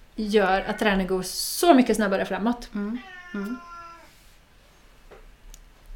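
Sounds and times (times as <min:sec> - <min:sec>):
speech: 0:00.2 - 0:03.7
cat meowing: 0:02.9 - 0:04.2.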